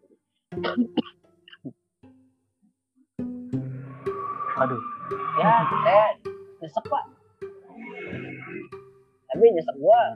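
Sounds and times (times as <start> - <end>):
person coughing: 0.6 - 1.2
speech: 0.6 - 1.2, 4.6 - 7.1, 9.4 - 10.1.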